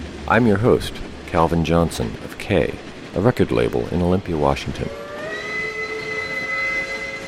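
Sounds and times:
passing train rumble: 0.0s - 7.2s
speech: 0.3s - 5.0s
train whistle: 4.9s - 7.2s.

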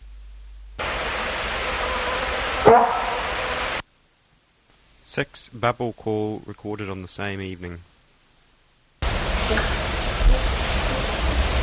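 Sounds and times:
loud tape hiss: 0.0s - 11.6s
bark-like call of a deer or kōkako: 2.6s - 3.6s
speech: 5.2s - 7.9s, 9.5s - 9.8s.

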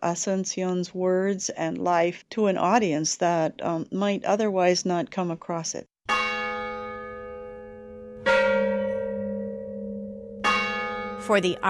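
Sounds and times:
speech: 0.0s - 5.9s, 11.3s - 11.6s
large mission church bells ringing: 6.1s - 11.6s.

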